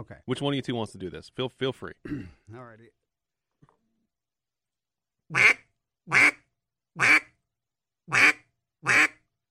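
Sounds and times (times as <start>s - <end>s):
speech: 0.0s - 3.0s, 5.3s - 6.4s, 7.0s - 7.2s
duck call sounding basic quacks: 5.3s - 6.4s, 7.0s - 7.3s, 8.1s - 9.2s.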